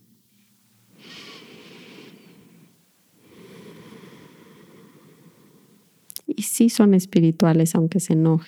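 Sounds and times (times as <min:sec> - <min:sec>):
slow deep breath close to the microphone: 0:00.9 - 0:06.1
speech: 0:06.4 - 0:08.4.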